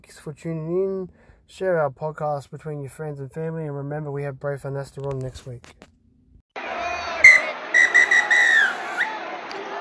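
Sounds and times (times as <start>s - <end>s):
speech: 0.0s - 5.9s
crowd murmur: 6.6s - 9.7s
referee's whistle blasts: 7.2s - 9.2s.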